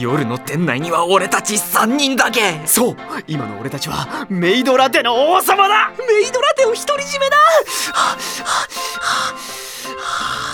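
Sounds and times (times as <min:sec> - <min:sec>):
speech: 0:00.0 - 0:10.4
deep breathing: 0:07.5 - 0:10.5.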